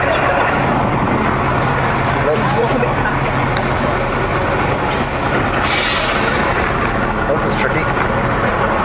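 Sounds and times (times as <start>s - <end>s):
large city bus engine idling in the rain: 0.0s - 8.8s
people chatting: 2.2s - 3.1s, 7.3s - 8.0s
city bus air brakes hissing: 4.7s - 6.5s.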